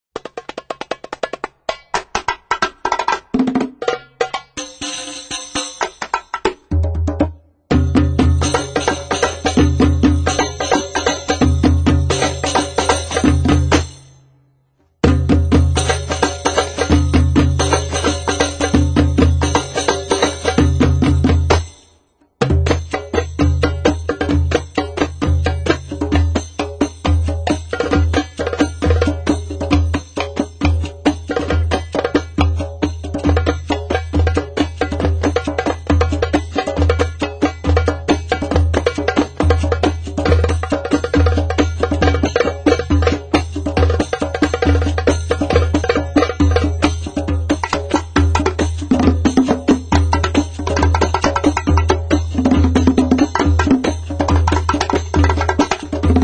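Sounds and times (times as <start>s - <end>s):
drum solo: 1.2s - 14.1s, 15.0s - 21.8s, 22.4s - 56.2s.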